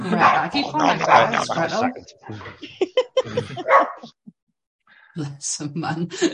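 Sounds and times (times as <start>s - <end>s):
laughter: 0.0s - 4.0s
excited dog barking and yipping: 0.1s - 1.6s, 3.5s - 4.0s
speech: 0.1s - 4.3s, 5.2s - 6.3s.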